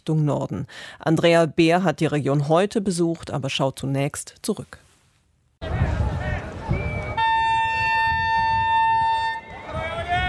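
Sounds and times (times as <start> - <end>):
speech: 0.0 - 4.8
crowd murmur at Gevgelija station: 5.6 - 7.8
train horn of overcrowded train leaving Gevgelija station: 7.1 - 9.5.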